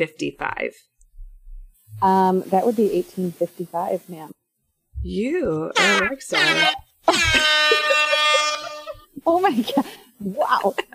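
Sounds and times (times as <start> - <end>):
speech: 0.0 - 0.9, 1.9 - 4.4, 5.0 - 7.8, 9.2 - 10.9
loud sustained air horn blast: 5.8 - 9.0
laughter: 5.8 - 9.1, 10.4 - 10.9.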